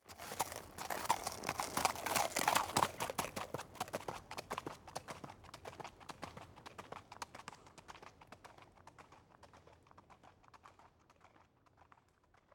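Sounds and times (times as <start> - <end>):
horse trotting away on gravel: 0.0 - 4.2.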